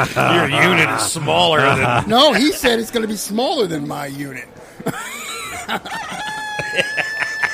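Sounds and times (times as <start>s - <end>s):
laughter: 0.0s - 3.0s, 4.8s - 7.5s
speech: 0.0s - 5.0s, 5.7s - 6.2s
rooster crowing: 5.5s - 7.5s.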